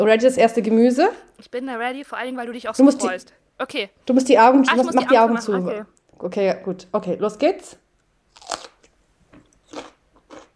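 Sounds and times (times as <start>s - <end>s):
speech: 0.0s - 7.8s
crunchy bite into raw celery: 8.3s - 8.9s, 9.6s - 10.5s
crackling chews of raw celery: 8.3s - 10.5s.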